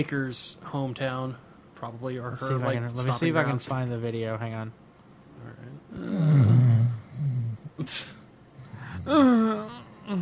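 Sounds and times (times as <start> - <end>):
speech: 0.0 - 4.8, 5.4 - 6.7, 7.8 - 8.2, 9.0 - 10.2
person doing an exaggerated fake snore: 5.9 - 7.7, 8.6 - 10.2.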